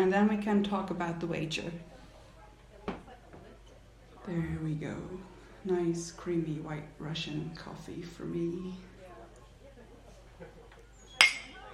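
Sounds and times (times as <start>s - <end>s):
speech: 0.0s - 2.0s, 4.2s - 8.9s
glasses clinking in a toast: 11.0s - 11.7s.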